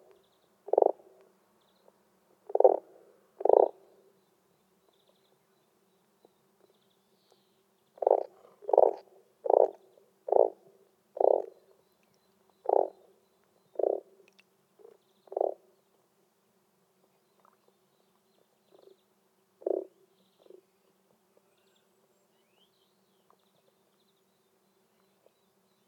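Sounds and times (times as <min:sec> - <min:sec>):
frog giving short buzzy pulsed croaks: 0:00.7 - 0:01.1, 0:02.5 - 0:03.8, 0:08.0 - 0:11.5, 0:12.6 - 0:13.1, 0:13.8 - 0:14.1, 0:14.8 - 0:15.6, 0:19.6 - 0:20.6.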